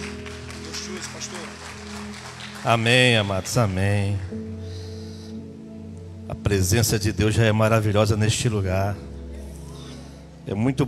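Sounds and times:
crowd applauding in a large room: 0:00.0 - 0:04.5
speech: 0:00.9 - 0:04.6, 0:06.4 - 0:09.1, 0:10.4 - 0:10.8.

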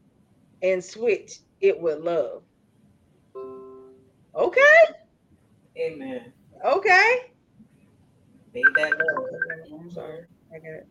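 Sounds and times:
speech: 0:00.6 - 0:02.5, 0:04.4 - 0:05.0, 0:05.8 - 0:07.3, 0:08.5 - 0:10.9
mobile phone ringing with electronic tone: 0:08.6 - 0:09.6.

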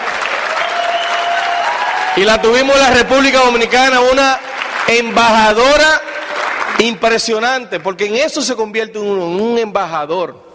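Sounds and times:
sizable crowd applauding: 0:00.0 - 0:08.2
speech: 0:02.2 - 0:06.0, 0:06.8 - 0:10.4.

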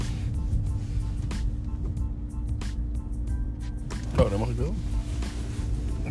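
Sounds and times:
large truck engine rumbling past: 0:00.0 - 0:06.0
speech: 0:04.2 - 0:05.0.

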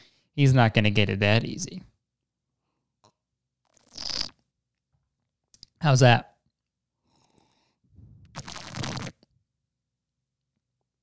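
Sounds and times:
speech: 0:00.4 - 0:01.9, 0:05.8 - 0:06.3
slurping water into a microphone: 0:08.3 - 0:09.2.

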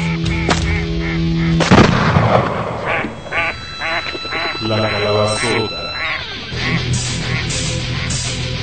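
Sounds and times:
nasal honking duck or goose calls: 0:00.0 - 0:01.6, 0:02.9 - 0:08.5
shotgun blasts: 0:01.6 - 0:02.9
speech: 0:02.3 - 0:02.6.

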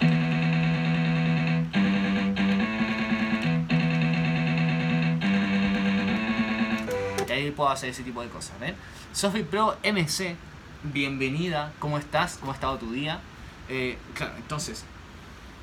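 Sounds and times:
distorted electric guitar chords through a simulated amplifier cabinet: 0:00.0 - 0:07.4
speech: 0:07.6 - 0:14.9.

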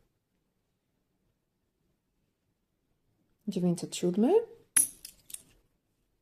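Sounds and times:
speech: 0:03.5 - 0:04.6
old mark coin tossed onto a hard surface: 0:04.8 - 0:05.4.

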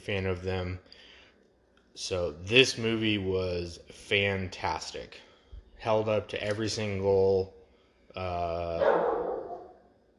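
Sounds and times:
speech: 0:00.0 - 0:00.9, 0:02.0 - 0:07.6, 0:08.2 - 0:09.2
dog barking: 0:08.8 - 0:09.8.

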